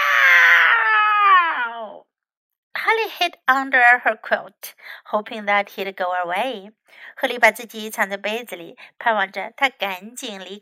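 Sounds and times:
cat with a torn ear howling: 0:00.0 - 0:02.0
speech: 0:03.0 - 0:10.6.

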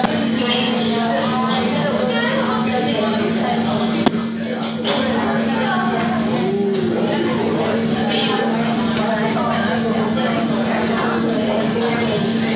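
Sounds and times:
many overlapping voices chattering in a busy Vietnamese restaurant: 0:00.0 - 0:12.5.

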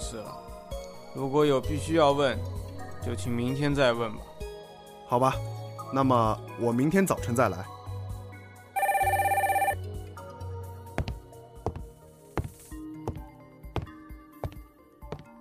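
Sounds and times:
speech: 0:00.1 - 0:00.6, 0:01.2 - 0:04.3, 0:05.1 - 0:07.8
telephone electric bell ringing: 0:08.8 - 0:09.8.

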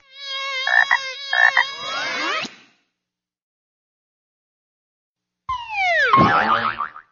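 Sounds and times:
cartoonish frog croaking: 0:00.6 - 0:01.8, 0:06.1 - 0:07.0.

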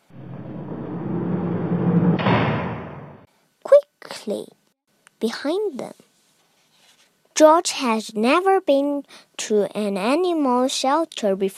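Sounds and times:
door at an animal shelter pushed shut with a rumbling scrape: 0:00.0 - 0:03.3
speech: 0:04.3 - 0:04.6, 0:05.2 - 0:06.0, 0:07.4 - 0:11.5.

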